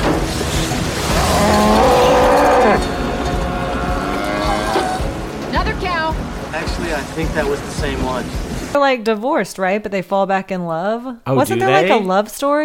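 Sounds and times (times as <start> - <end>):
steady rushing noise: 0.0 - 8.8
cow mooing: 1.0 - 5.2
indistinct voices: 1.0 - 7.9
speech: 7.4 - 12.6.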